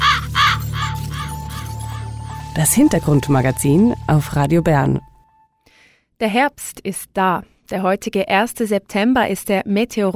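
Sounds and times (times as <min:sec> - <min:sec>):
raven cawing in a radio jingle: 0:00.0 - 0:01.6
speech: 0:02.6 - 0:05.1, 0:06.2 - 0:10.1.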